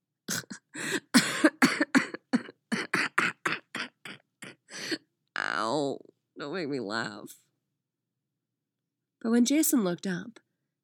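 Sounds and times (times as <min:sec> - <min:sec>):
harsh coughing rattling injured ribs: 0:00.3 - 0:05.1
speech: 0:06.4 - 0:07.4, 0:09.2 - 0:10.4.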